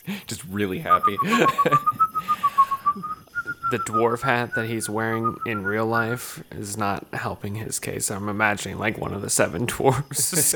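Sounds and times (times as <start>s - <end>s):
speech: 0.1s - 2.4s, 3.7s - 10.5s
person whistling a tune: 0.8s - 6.4s
laughter: 0.9s - 3.2s, 9.9s - 10.5s.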